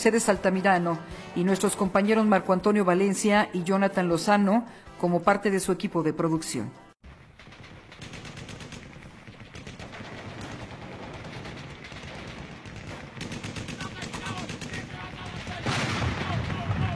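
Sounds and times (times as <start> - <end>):
speech: 0.0 - 6.8
World War I artillery shell blasts: 7.0 - 16.9
World War I machine-gun bursts: 7.3 - 16.4.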